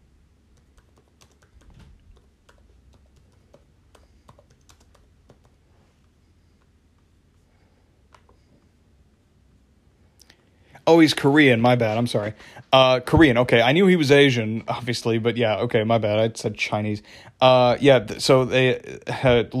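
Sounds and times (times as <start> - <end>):
low hum: 0.0 - 19.5
typing on a computer keyboard: 0.5 - 5.6
speech: 10.9 - 19.5.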